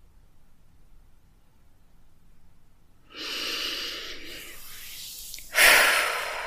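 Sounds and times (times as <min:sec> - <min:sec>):
deep breathing in and out during a guided relaxation exercise: 0:03.1 - 0:06.4.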